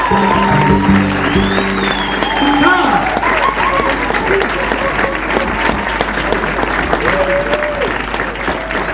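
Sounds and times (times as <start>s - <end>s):
large crowd applauding: 0.0s - 8.9s.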